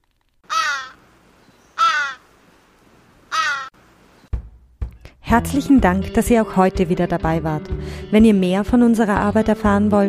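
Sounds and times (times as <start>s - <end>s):
crows cawing: 0.4s - 1.0s, 1.8s - 2.3s, 3.3s - 3.8s
speech: 5.3s - 10.0s.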